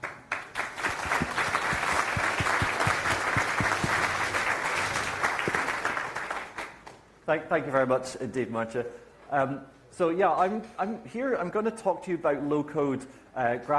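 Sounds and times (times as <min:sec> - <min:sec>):
audience applause welcoming a speaker: 0:00.0 - 0:06.8
speech: 0:07.3 - 0:13.7.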